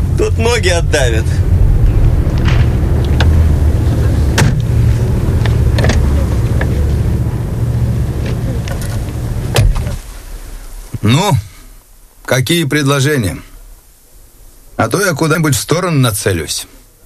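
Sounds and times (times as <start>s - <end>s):
car engine idling: 0.0s - 11.0s
speech: 0.2s - 1.5s, 11.0s - 11.5s, 12.3s - 13.5s, 14.8s - 16.8s.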